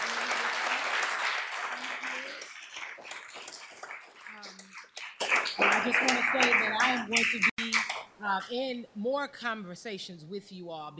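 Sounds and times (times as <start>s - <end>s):
loud dense audience applause: 0.0s - 8.0s
speech: 5.6s - 7.5s, 8.2s - 10.9s.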